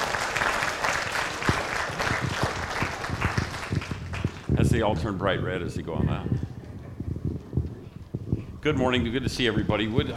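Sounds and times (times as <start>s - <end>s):
church audience applauding: 0.0s - 4.6s
speech: 4.8s - 6.5s, 8.6s - 10.1s.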